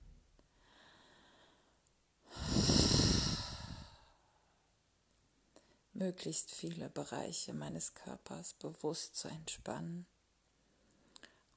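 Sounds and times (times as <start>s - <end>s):
slow calm breathing of a person holding a deep forward stretch: 0.4s - 4.8s, 5.5s - 5.9s, 10.6s - 11.5s
speech: 6.0s - 10.1s.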